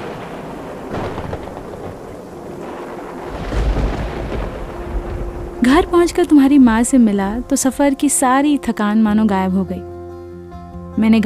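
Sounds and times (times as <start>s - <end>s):
steady dense stormy rain: 0.0s - 8.2s
deep thunder rumble: 0.0s - 8.5s
speech: 5.6s - 9.9s, 11.0s - 11.2s.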